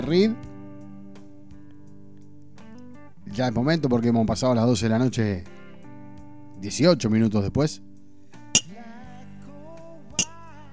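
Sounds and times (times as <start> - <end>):
speech: 0.0 - 0.5, 3.3 - 5.6, 6.6 - 7.9
soft sustained music: 0.0 - 10.7
glasses clinking in a birthday toast, one holding water: 8.6 - 8.8.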